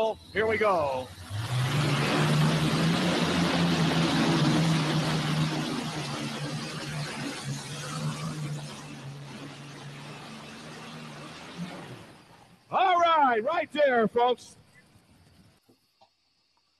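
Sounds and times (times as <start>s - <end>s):
speech: 0.0s - 1.5s, 13.4s - 14.6s
turbocharged Allison aircraft engines of a pulling tractor roaring: 0.0s - 15.4s.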